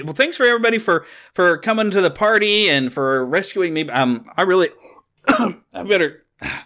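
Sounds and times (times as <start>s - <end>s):
speech: 0.0s - 6.6s
throat clearing and coughing from someone with something caught in the throat: 5.2s - 5.7s, 6.4s - 6.6s.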